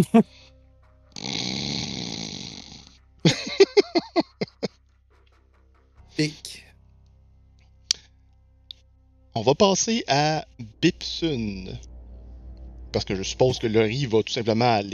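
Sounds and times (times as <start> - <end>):
speech: 0.0 - 0.4, 6.2 - 6.6, 9.4 - 11.9, 12.9 - 14.9
person asleep with head down in a book snoring: 1.2 - 2.9
laughter: 3.3 - 4.7.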